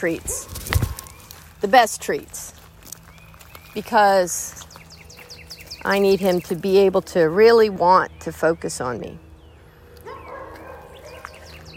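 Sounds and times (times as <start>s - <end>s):
speech: 0.0s - 0.8s, 1.6s - 2.6s, 3.8s - 4.6s, 5.8s - 9.2s
steady background hum: 0.0s - 11.7s
faint neighborhood dogs barking: 0.2s - 1.4s, 9.9s - 11.7s.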